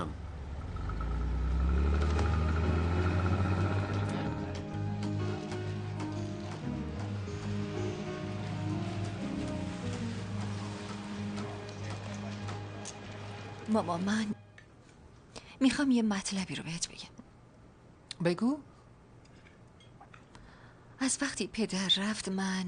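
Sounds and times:
car engine rumbling as the car is moved away from an intersection: 0:00.0 - 0:11.4
speech: 0:13.7 - 0:14.4, 0:15.6 - 0:17.1, 0:18.2 - 0:18.7, 0:21.0 - 0:22.6.

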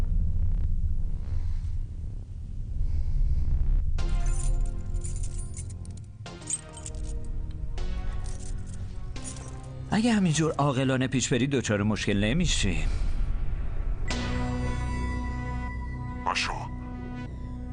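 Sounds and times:
low rumble: 0:00.0 - 0:17.7
keys jangling as they are handed over: 0:04.1 - 0:07.4, 0:08.1 - 0:09.8
speech: 0:10.0 - 0:13.1.

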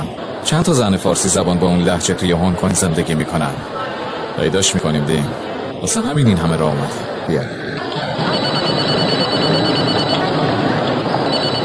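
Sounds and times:
speech: 0:00.0 - 0:08.4
murmur of voices: 0:00.0 - 0:11.6
mobile phone ringing: 0:08.2 - 0:10.4, 0:11.2 - 0:11.6.

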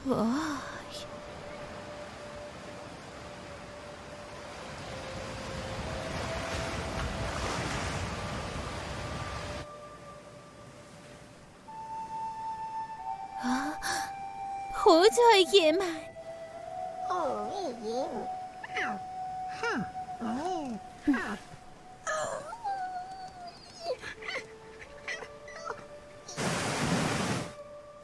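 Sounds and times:
speech: 0:00.0 - 0:00.5, 0:14.9 - 0:16.0, 0:17.5 - 0:19.0
wind: 0:00.0 - 0:28.0
rushing sea surf and breaking waves: 0:00.8 - 0:13.0, 0:26.3 - 0:27.6.

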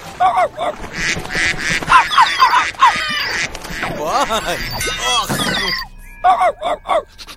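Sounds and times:
duck quacking: 0:00.2 - 0:07.3
laughter: 0:03.8 - 0:05.9
speech: 0:04.3 - 0:07.2.

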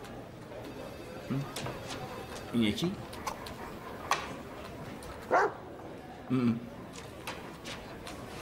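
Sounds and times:
speech: 0:01.3 - 0:03.1, 0:06.3 - 0:06.7
dog barking: 0:05.2 - 0:05.6.

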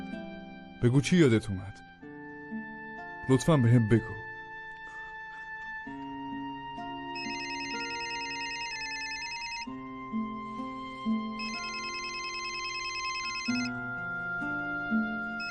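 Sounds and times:
speech: 0:00.8 - 0:01.8, 0:03.3 - 0:04.2
phone ringtone announcing an incoming call, bright electronic melody: 0:07.1 - 0:09.8, 0:11.4 - 0:14.4, 0:15.3 - 0:15.5.

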